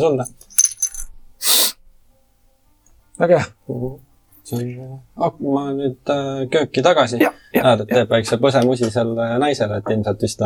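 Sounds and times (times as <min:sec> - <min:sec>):
speech: 0:00.0 - 0:00.5, 0:03.2 - 0:10.4
coins jingling inside a small coin-purse sized bag: 0:00.3 - 0:01.1.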